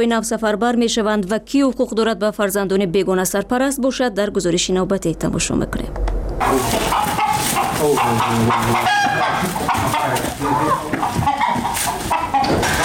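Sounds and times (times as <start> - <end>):
speech: 0.0 - 7.1, 7.8 - 11.1
chickens clucking in a barnyard: 6.4 - 12.8
rooster drawn-out crow: 6.5 - 12.8.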